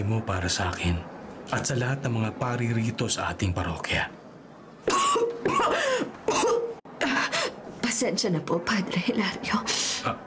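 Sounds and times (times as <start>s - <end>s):
speech: 0.1s - 4.2s, 4.8s - 6.2s, 8.0s - 10.2s
harsh raspy throaty coughs: 4.9s - 6.8s.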